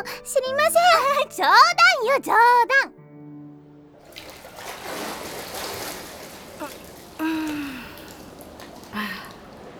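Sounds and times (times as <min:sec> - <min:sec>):
speech: 0:00.0 - 0:02.9
water splashing and running in a Japanese public bathhouse: 0:04.0 - 0:09.7
sighs or gasps: 0:06.6 - 0:08.3, 0:08.9 - 0:09.5.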